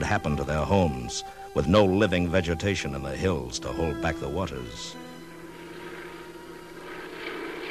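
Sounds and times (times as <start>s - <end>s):
speech: 0.0s - 5.0s
propeller planes flying overhead scattering ryegrass seed: 5.0s - 7.6s.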